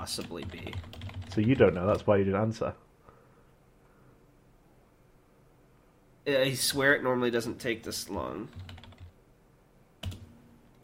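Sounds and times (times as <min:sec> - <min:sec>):
typing on a computer keyboard: 0:00.0 - 0:02.0, 0:08.5 - 0:09.1, 0:10.0 - 0:10.3
speech: 0:00.0 - 0:02.9, 0:06.3 - 0:08.8
low hush: 0:00.0 - 0:10.8.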